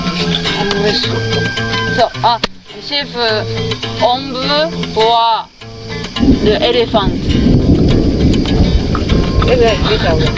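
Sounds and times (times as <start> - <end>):
speech: 0.9 - 5.6, 6.2 - 7.6, 9.5 - 10.3
deep continuous thunder rumbling: 6.2 - 10.3.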